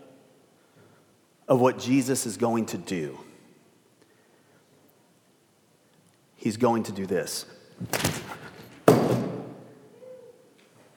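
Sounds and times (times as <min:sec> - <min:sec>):
speech: 0:01.5 - 0:03.3, 0:06.4 - 0:08.4
pile of objects toppling as a speaker knocks it over: 0:07.8 - 0:09.6
heavy thud of something falling hard: 0:07.8 - 0:09.7.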